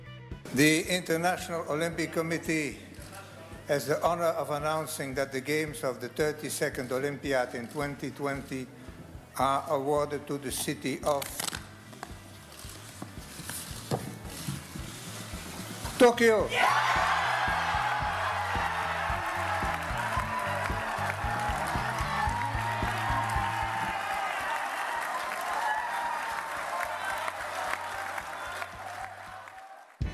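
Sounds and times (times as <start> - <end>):
speech: 0.5 - 2.8, 3.7 - 8.8, 9.4 - 11.5, 16.0 - 16.9
excited shouts from a crowd: 16.5 - 29.8
large crowd cheering and applauding: 16.5 - 30.0.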